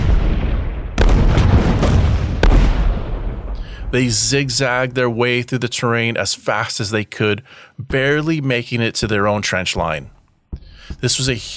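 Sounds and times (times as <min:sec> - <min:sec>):
heavy Turkish artillery blasts with crackling bursts at Gallipoli: 0:01.0 - 0:05.0
constant low rumble of artillery barrage: 0:02.4 - 0:05.2
speech: 0:03.9 - 0:10.2, 0:10.9 - 0:11.5.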